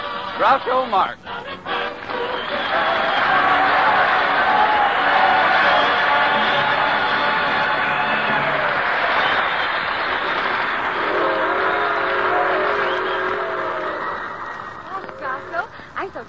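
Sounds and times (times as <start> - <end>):
speech: 0.4 - 3.1
passenger train long whistle: 2.2 - 15.6
passenger train with a Pullman car rumbling: 10.7 - 15.7.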